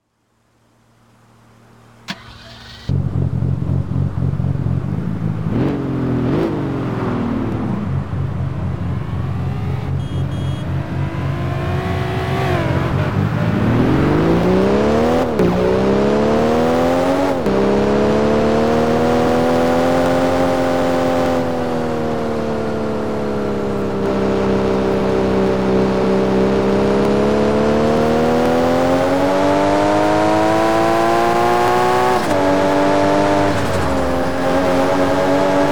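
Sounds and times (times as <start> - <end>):
Jaguar XKR car engine: 0.4 - 35.7.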